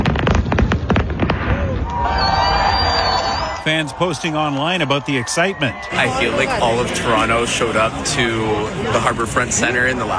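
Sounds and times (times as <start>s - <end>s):
fireworks bursting in sharp pops and crackles: 0.0s - 3.6s
rumbling crowd noise: 1.4s - 10.1s
faint whistle overhead: 2.0s - 3.6s
speech: 3.7s - 10.1s.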